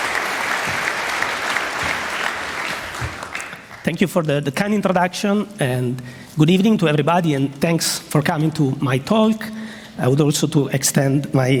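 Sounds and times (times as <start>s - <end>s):
audience applauding a speaker: 0.0s - 4.0s
speech: 3.9s - 11.5s.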